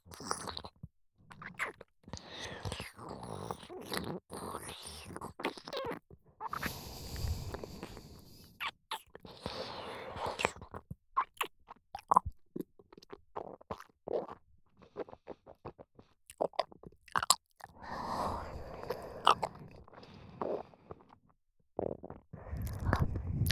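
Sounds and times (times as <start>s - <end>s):
wet mouth and eating sounds close to the ear: 0.1s - 0.8s, 1.4s - 21.2s, 21.8s - 23.4s.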